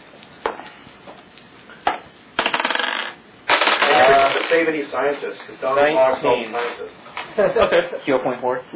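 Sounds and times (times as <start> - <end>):
dice rolling on a tabletop in a tabletop role-playing game: 2.4 - 4.7
speech: 4.6 - 8.7.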